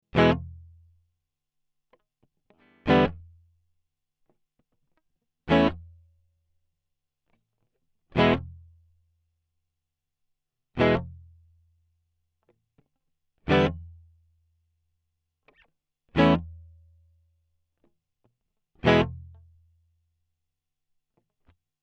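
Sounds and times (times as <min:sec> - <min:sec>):
electric guitar without effects through tape echo unit: 0:00.1 - 0:00.8, 0:01.9 - 0:03.4, 0:04.2 - 0:06.0, 0:07.3 - 0:08.8, 0:10.7 - 0:11.4, 0:12.4 - 0:14.0, 0:15.4 - 0:16.8, 0:17.8 - 0:19.5.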